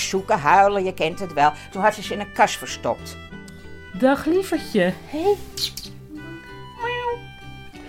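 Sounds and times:
speech: 0:00.1 - 0:05.9
cat meowing: 0:06.1 - 0:07.4.

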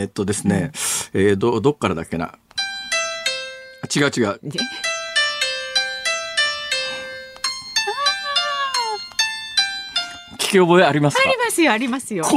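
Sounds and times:
speech: 0:00.0 - 0:02.4, 0:03.8 - 0:04.9, 0:10.5 - 0:12.3
simple piano melody played on a smartphone piano app: 0:02.6 - 0:11.3.

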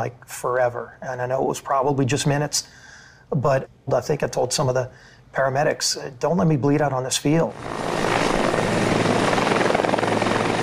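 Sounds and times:
speech: 0:00.0 - 0:08.1
helicopter engine and rotor noise: 0:07.5 - 0:10.6.

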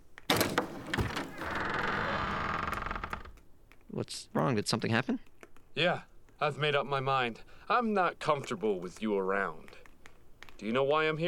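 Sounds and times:
door opening: 0:00.3 - 0:03.4
speech: 0:04.0 - 0:09.7, 0:10.6 - 0:11.2.

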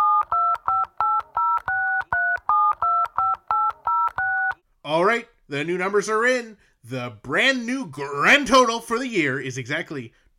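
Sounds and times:
phone calculator keypad beeps: 0:00.0 - 0:04.6
speech: 0:05.2 - 0:10.3.

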